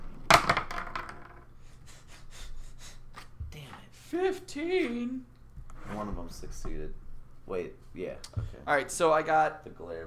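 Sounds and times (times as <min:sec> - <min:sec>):
two dice rolling on a table for a game: 0:00.0 - 0:01.5
speech: 0:04.1 - 0:05.3, 0:05.9 - 0:10.0.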